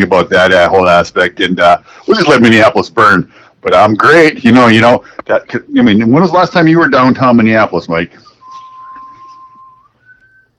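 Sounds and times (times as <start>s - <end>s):
speech: 0.0s - 8.3s
faint noise: 0.0s - 10.5s
person whistling a long steady tone: 8.2s - 10.5s.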